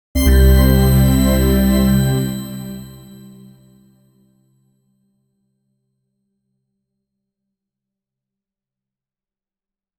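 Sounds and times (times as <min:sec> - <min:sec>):
short intro chime: 0:00.2 - 0:03.6.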